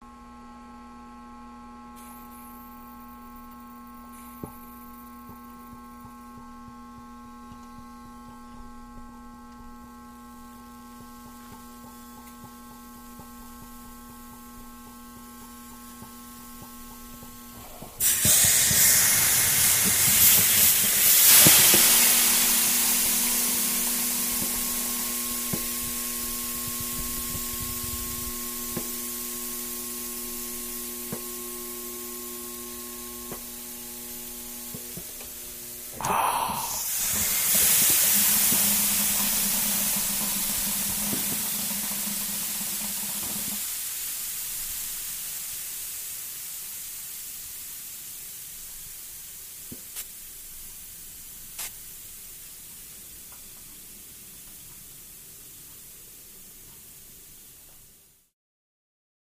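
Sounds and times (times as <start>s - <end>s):
electric sound: 0.1s - 43.7s
steam: 2.0s - 8.5s, 9.8s - 58.0s.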